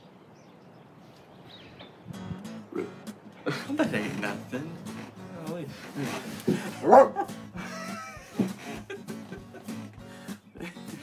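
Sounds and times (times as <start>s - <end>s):
speech: 2.8s - 4.9s, 5.6s - 7.3s
laughter: 3.4s - 5.0s, 5.7s - 11.0s
dog giving short sharp barks and yips: 6.7s - 7.3s.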